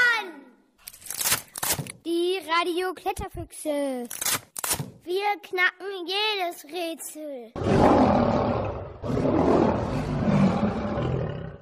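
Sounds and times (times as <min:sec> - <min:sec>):
speech: 0:02.1 - 0:04.4, 0:05.0 - 0:08.5
lion roaring: 0:07.6 - 0:11.5.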